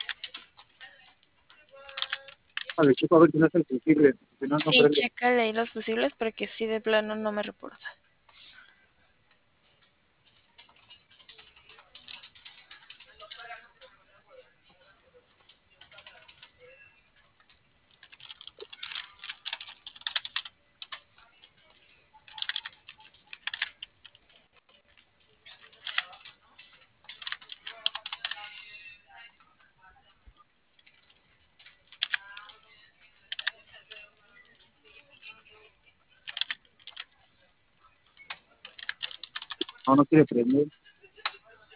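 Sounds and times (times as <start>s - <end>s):
keys clattering on a computer keyboard: 0.0s - 3.0s, 9.8s - 14.0s, 14.7s - 28.6s, 30.8s - 35.3s, 36.2s - 37.2s, 38.1s - 40.6s
speech: 2.8s - 8.0s, 39.9s - 40.9s.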